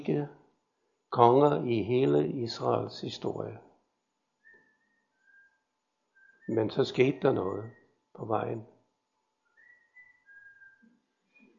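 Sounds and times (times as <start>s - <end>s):
speech: 0.0s - 0.4s, 1.1s - 3.7s, 6.5s - 8.7s
person whistling a short wavering melody: 4.4s - 5.6s, 6.2s - 6.8s, 9.5s - 11.0s.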